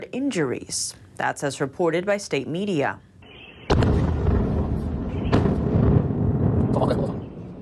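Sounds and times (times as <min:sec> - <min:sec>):
speech: 0:00.0 - 0:03.1
second blast: 0:03.6 - 0:07.3
explosion at a petrochemical plant: 0:03.7 - 0:07.6.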